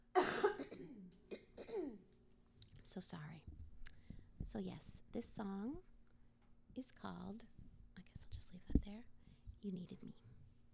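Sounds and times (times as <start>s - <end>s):
person clearing throat: 0.2s - 2.0s
speech: 2.9s - 3.5s, 4.5s - 5.9s, 6.8s - 7.5s, 8.9s - 10.2s.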